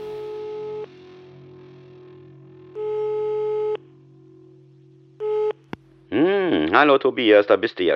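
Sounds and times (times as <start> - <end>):
low hum: 0.0 - 6.9
telephone ringback tone while a call is placed: 2.8 - 3.8, 5.2 - 5.7
speech: 6.2 - 7.9.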